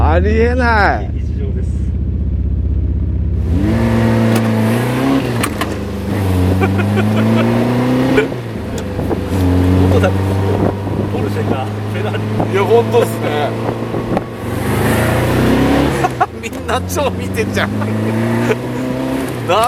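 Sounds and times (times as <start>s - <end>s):
Honda S800 sports car engine driving on a snowy road: 0.0s - 19.6s
speech: 0.2s - 1.2s, 6.7s - 8.4s, 9.4s - 10.3s, 11.2s - 13.8s, 16.4s - 18.7s, 19.5s - 19.6s
laughter: 6.4s - 8.8s, 15.9s - 16.7s, 17.4s - 19.0s
constant wind noise: 8.5s - 15.8s.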